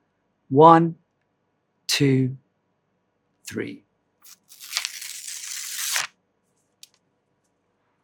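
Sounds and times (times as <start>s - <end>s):
speech: 0.5s - 1.0s, 1.9s - 2.4s, 3.5s - 4.4s
paper tearing: 4.2s - 6.1s.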